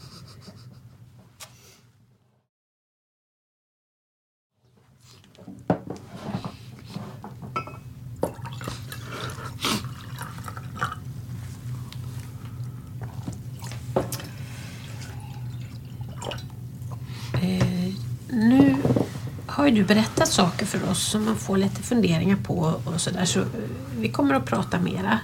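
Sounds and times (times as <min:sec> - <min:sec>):
low hum: 0:00.0 - 0:02.2, 0:04.6 - 0:25.2
water running into a glass or bottle: 0:08.2 - 0:11.1, 0:11.7 - 0:17.1
speech: 0:19.6 - 0:25.2.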